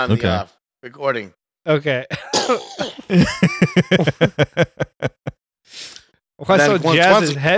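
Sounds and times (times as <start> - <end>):
speech: 0.0 - 7.5
laughter: 2.1 - 5.3
ill person having a coughing fit: 2.2 - 4.1.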